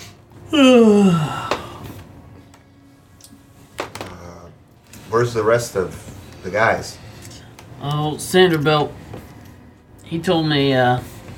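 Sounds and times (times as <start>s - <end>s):
person yawning on a boat: 0.4s - 1.9s
speech: 0.5s - 1.4s, 5.2s - 7.0s, 7.8s - 9.0s, 10.1s - 11.1s.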